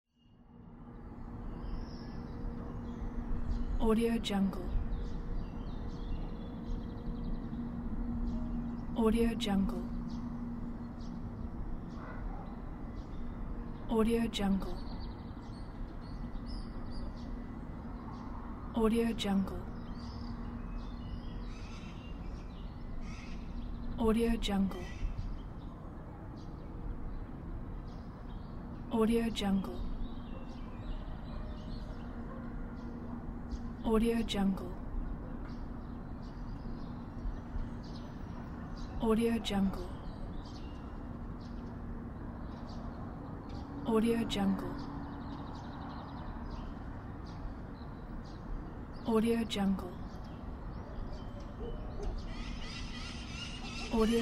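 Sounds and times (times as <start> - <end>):
city birds singing: 0.1 - 54.2
dogs barking in urban atmosphere: 11.9 - 12.7, 30.3 - 32.9, 50.8 - 52.4.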